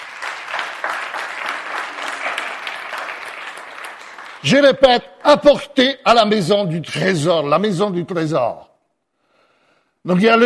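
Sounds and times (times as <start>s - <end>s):
church congregation applauding: 0.0s - 5.6s
speech: 4.4s - 8.7s, 10.0s - 10.4s.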